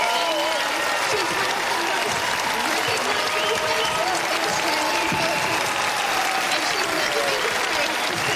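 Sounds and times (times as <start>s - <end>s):
faint cheers and voices: 0.0s - 8.3s
large crowd applauding: 0.0s - 8.3s.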